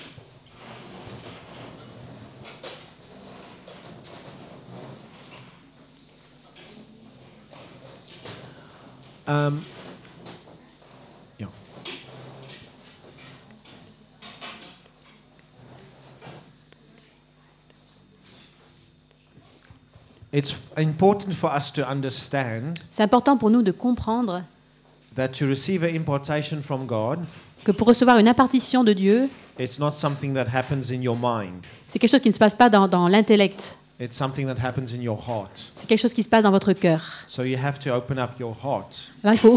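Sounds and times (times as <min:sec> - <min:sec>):
chairs being moved across the floor: 0:00.0 - 0:16.6, 0:27.1 - 0:36.8
speech: 0:09.3 - 0:09.8, 0:20.4 - 0:24.6, 0:25.2 - 0:39.5.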